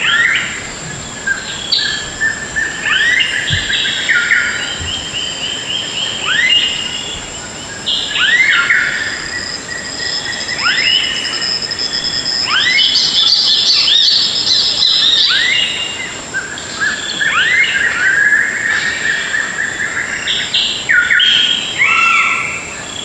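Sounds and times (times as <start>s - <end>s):
many jungle birds calling: 0.0s - 22.5s
thin steady high insect whine in the jungle: 0.0s - 23.0s
soft low hum: 0.5s - 6.0s
faint knock: 3.5s - 3.9s.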